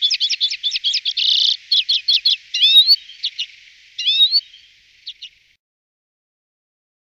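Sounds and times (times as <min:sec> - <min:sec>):
common redpoll chattering calls, buzzy trill and whistled notes: 0:00.0 - 0:05.6.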